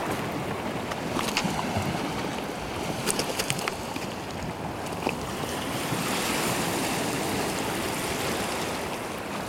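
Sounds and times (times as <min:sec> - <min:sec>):
waves washing back over jagged cut rocks and pebbles: 0:00.0 - 0:09.4
stones rattling as water drains between them: 0:03.0 - 0:03.8.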